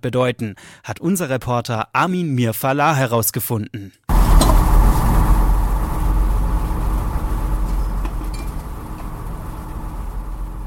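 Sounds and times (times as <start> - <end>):
speech: 0.0 - 4.0
heavy machinery engine rumble at a construction site: 4.1 - 10.6
clanks and scrapes at a construction site: 7.6 - 8.7.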